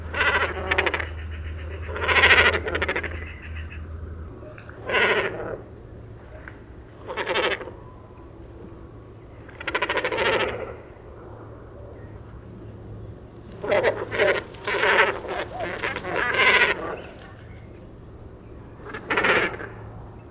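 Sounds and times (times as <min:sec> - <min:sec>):
great cormorant call: 0:00.0 - 0:03.9, 0:04.6 - 0:05.7, 0:07.0 - 0:07.9, 0:09.5 - 0:10.9, 0:13.5 - 0:17.7, 0:18.7 - 0:19.8.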